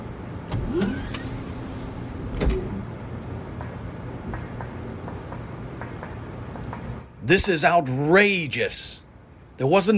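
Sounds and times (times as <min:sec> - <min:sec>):
mechanical door opening during a prisoner transfer: 0:00.4 - 0:02.9
pneumatic hiss: 0:00.5 - 0:02.8
speech: 0:07.3 - 0:09.0, 0:09.6 - 0:09.9.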